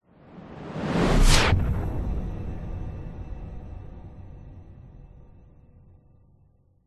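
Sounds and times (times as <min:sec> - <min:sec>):
cinematic whoosh: 0:00.1 - 0:04.2.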